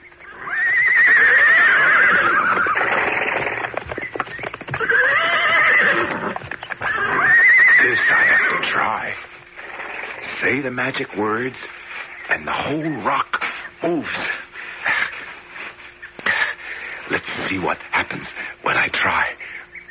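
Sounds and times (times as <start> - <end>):
horse hooves clattering: 0.0 - 18.4
horse neighing in shrill whinnies: 0.2 - 3.8, 4.7 - 8.8
speech: 10.5 - 11.8, 12.4 - 14.4, 17.4 - 19.4.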